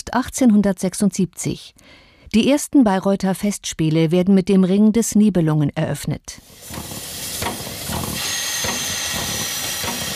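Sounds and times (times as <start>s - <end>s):
speech: 0.1s - 6.8s
steam locomotive pulling special train into station at Bayreuth hissing: 6.4s - 10.1s.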